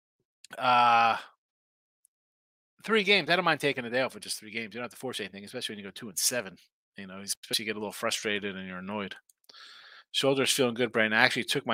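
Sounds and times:
person yawning: 0.5 - 1.3
speech: 0.5 - 1.3, 2.8 - 11.7.

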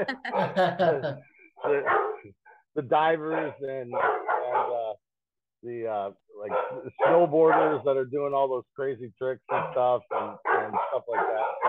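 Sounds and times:
laughter: 0.0 - 1.9
speech: 0.0 - 4.9, 5.6 - 11.6
dog barking: 1.6 - 2.3, 3.2 - 4.9, 6.4 - 7.8, 9.4 - 11.6.

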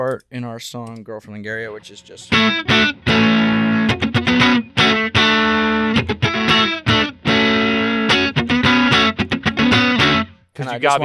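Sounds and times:
speech: 0.0 - 4.5, 10.6 - 11.0
loud distorted electric guitar chords without reverb: 1.8 - 10.4.

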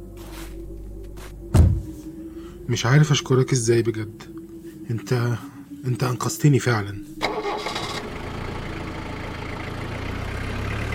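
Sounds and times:
speech: 2.7 - 4.3, 4.9 - 7.2
car engine idling: 7.2 - 10.9.

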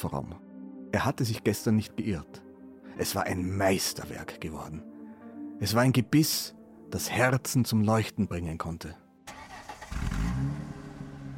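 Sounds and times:
speech: 0.0 - 2.4, 3.0 - 4.9, 5.6 - 9.0
car engine starting and settling into a steady running drone: 9.3 - 11.3.

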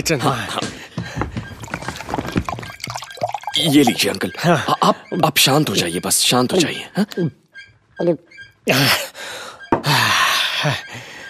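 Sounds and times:
speech: 0.0 - 0.6, 3.6 - 7.4, 8.0 - 9.1, 10.6 - 11.1
water pouring into a glass in a kitchen: 1.6 - 4.4.

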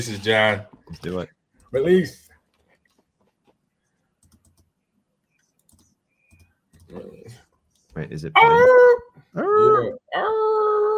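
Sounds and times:
speech: 0.0 - 2.2, 6.9 - 7.4, 8.0 - 10.9
dog howling: 8.4 - 10.9.

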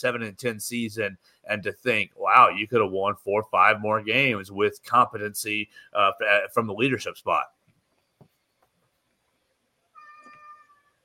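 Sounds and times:
speech: 0.0 - 7.6
faint taps: 7.7 - 9.0
cat meowing: 10.0 - 11.0.

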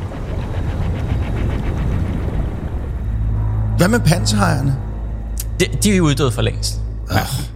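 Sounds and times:
rumbling underwater whoosh with deep churning: 0.0 - 5.4
speech: 3.8 - 4.9, 5.6 - 7.5.

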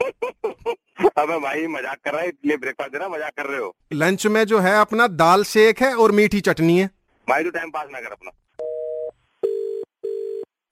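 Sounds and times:
speech: 1.2 - 8.4
telephone line tone beeps after a call is cut off: 8.6 - 10.5.

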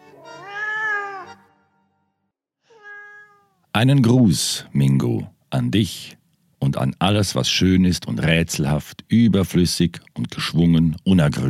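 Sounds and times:
cat meowing: 0.1 - 1.4, 2.7 - 3.7
speech: 3.8 - 11.4.

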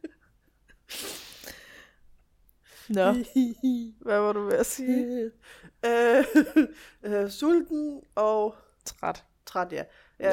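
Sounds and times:
sudden human sneeze: 0.9 - 1.6
speech: 2.9 - 10.3.

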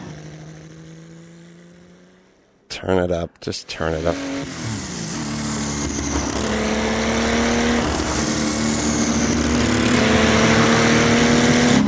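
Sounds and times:
turbocharged car engine revving on boost: 0.0 - 3.0, 3.6 - 11.8
speech: 2.8 - 4.4.

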